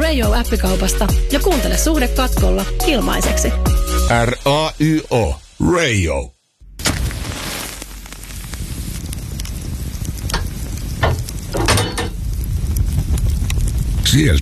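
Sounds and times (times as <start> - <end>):
speech: 0.2 - 6.4, 14.0 - 14.3
sausage sizzling on a hot sauna stove: 7.0 - 14.3.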